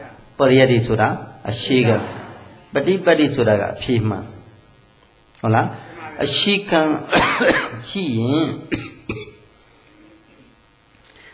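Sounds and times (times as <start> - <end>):
speech: 0.4 - 4.4, 5.4 - 9.3
short rough cough: 7.1 - 7.8, 8.7 - 9.5.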